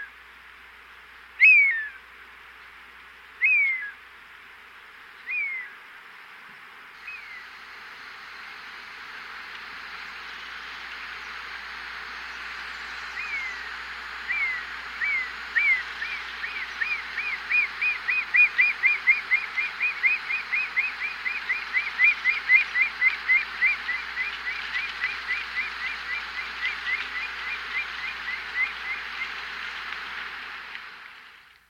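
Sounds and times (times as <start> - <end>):
Black-chested hawk calling in South America: 1.4 - 2.0, 10.0 - 29.4.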